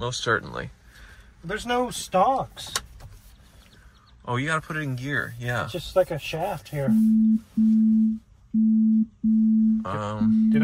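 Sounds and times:
speech: 0:00.0 - 0:00.8, 0:01.4 - 0:02.8, 0:04.2 - 0:10.6
incoming phone call electronic ringtone beeping: 0:07.0 - 0:10.6.

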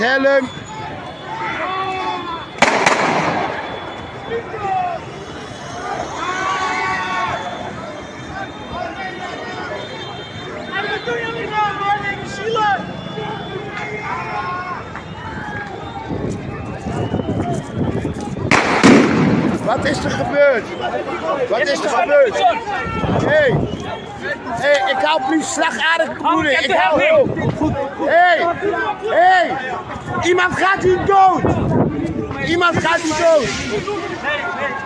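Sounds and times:
speech: 0:00.0 - 0:00.6, 0:19.7 - 0:31.6, 0:32.4 - 0:34.5
chaotic crowd of people shouting and talking during a riot: 0:00.0 - 0:34.8
fireworks and firecrackers exploding during a riot: 0:02.6 - 0:04.2, 0:18.5 - 0:19.9.

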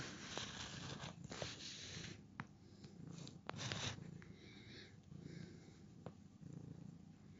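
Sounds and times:
male cat purring: 0:00.0 - 0:07.3.

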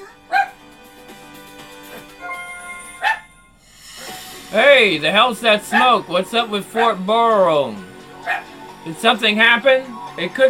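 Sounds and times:
dogs barking: 0:00.3 - 0:00.6, 0:01.8 - 0:02.4, 0:03.0 - 0:03.4, 0:05.7 - 0:06.0, 0:06.7 - 0:07.1, 0:08.2 - 0:08.6
speech: 0:04.5 - 0:10.4.

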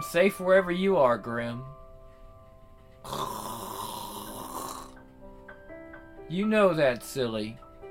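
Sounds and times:
speech: 0:00.1 - 0:01.8, 0:06.3 - 0:07.6
soft breathy snore with a rough rasp and faint whistle: 0:03.1 - 0:05.0.

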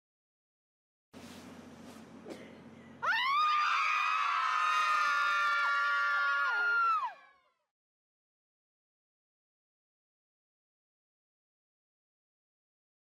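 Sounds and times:
mothers screaming loudly together: 0:03.0 - 0:07.4.

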